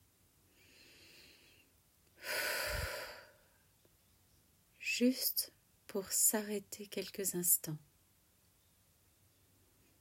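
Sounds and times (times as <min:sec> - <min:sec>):
long deep breath during a calming exercise: 0:00.5 - 0:03.6
speech: 0:05.0 - 0:07.9.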